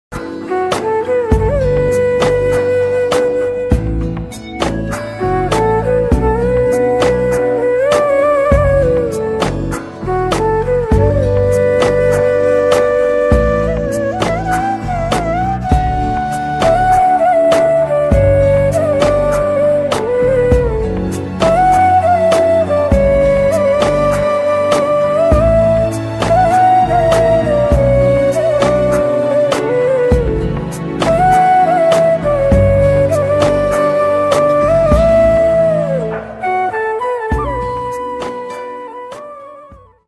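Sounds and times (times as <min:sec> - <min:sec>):
romantic flute ringtone: 0:00.3 - 0:40.0.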